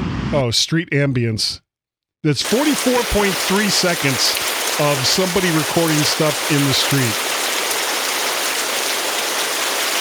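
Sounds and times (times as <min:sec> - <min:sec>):
speech: 0:00.3 - 0:01.6, 0:02.2 - 0:07.3
steady rain hissing down: 0:02.4 - 0:09.9.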